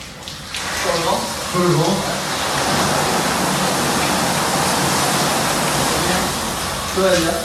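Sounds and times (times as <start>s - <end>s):
powerful hydrotherapy shower jets spraying water: 0.0s - 7.4s
voice: 0.8s - 2.2s, 5.8s - 7.4s.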